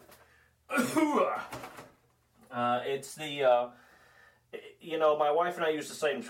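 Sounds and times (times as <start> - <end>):
rough gravelly throat-clearing cough: 0.7 - 1.3
speech: 1.0 - 1.6, 2.6 - 3.9, 4.5 - 6.2.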